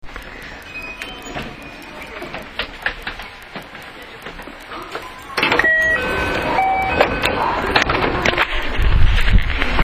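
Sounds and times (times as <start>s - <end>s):
223 series 6000 train door opening: 0.9s - 8.8s.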